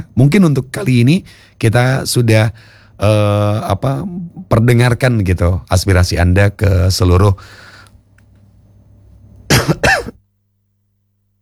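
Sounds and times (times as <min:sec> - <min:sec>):
speech: 0:00.0 - 0:07.7
low quiet hum: 0:00.0 - 0:11.4
person coughing: 0:09.5 - 0:10.2.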